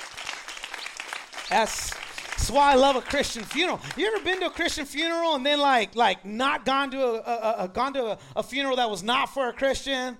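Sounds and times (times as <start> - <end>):
audience clapping in scattered overlapping applause: 0.0 - 5.5
speech: 1.5 - 10.1.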